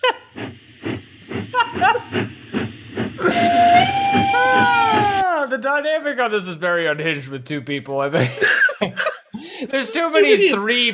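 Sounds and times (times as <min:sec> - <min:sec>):
steam train pulling in with rhythmic chuffing: 0:00.0 - 0:05.2
laughter: 0:01.5 - 0:02.2, 0:08.2 - 0:10.7
sustained slightly wavering steam whistle: 0:01.5 - 0:05.2
speech: 0:05.9 - 0:08.6, 0:09.7 - 0:10.9.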